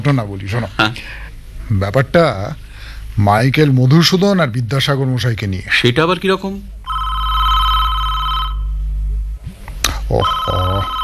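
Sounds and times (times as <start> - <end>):
speech: 0.0 - 6.8, 10.1 - 11.0
telephone ringing with a high electronic tone: 6.9 - 8.8, 10.2 - 11.0.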